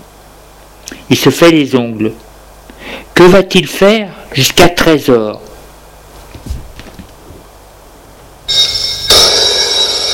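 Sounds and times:
speech: 0:01.1 - 0:02.2, 0:03.2 - 0:05.5
soft knocks or footsteps: 0:06.1 - 0:07.5
telephone bell ringing: 0:08.5 - 0:10.1.

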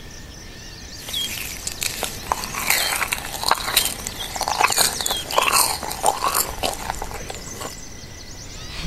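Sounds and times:
raw cauliflower being chewed: 0:01.0 - 0:07.9.

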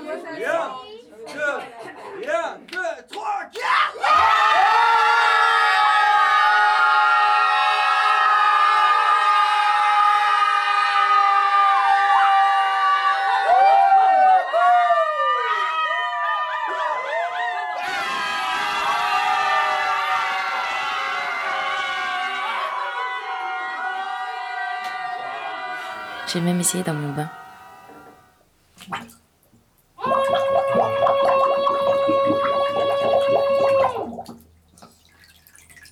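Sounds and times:
speech: 0:00.1 - 0:04.4, 0:26.3 - 0:27.4
laughter: 0:01.5 - 0:02.3
group of people shouting together as a pack: 0:03.6 - 0:26.2, 0:30.0 - 0:34.0.

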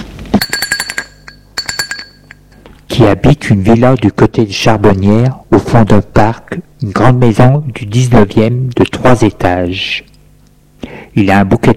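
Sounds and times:
doorbell ringing at a large three-storey 19th-century villa: 0:00.4 - 0:02.6
speech: 0:03.0 - 0:10.1, 0:11.2 - 0:11.7.

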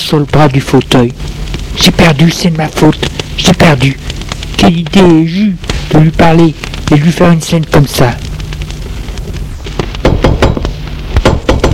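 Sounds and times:
speech: 0:00.1 - 0:08.3
knocking on a door: 0:10.0 - 0:11.7.

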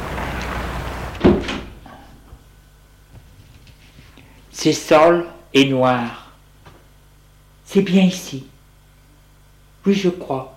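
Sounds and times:
steady low hum: 0:00.0 - 0:10.5
unlocked alleyway door pushed open as people enter: 0:00.1 - 0:02.0
speech: 0:04.6 - 0:06.2, 0:07.7 - 0:08.5, 0:09.8 - 0:10.5.

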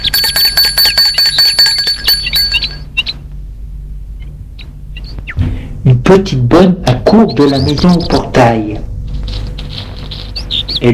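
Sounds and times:
bell at the gate of a white one-storey house ringing: 0:00.0 - 0:02.9
faint metallic clinks: 0:00.0 - 0:02.9
speech: 0:06.1 - 0:08.9.

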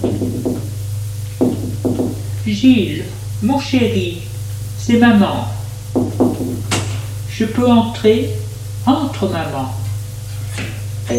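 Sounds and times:
speech: 0:00.0 - 0:00.4, 0:02.5 - 0:05.6, 0:07.4 - 0:09.8
knocking on a door: 0:00.0 - 0:00.8, 0:01.4 - 0:02.3, 0:05.9 - 0:07.0
steady low hum: 0:00.0 - 0:11.1.

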